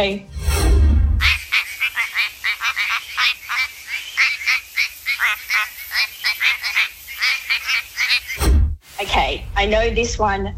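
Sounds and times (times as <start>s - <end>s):
speech: 0.0s - 0.4s, 9.2s - 10.5s
short nasal quacking frog calls: 1.2s - 8.4s.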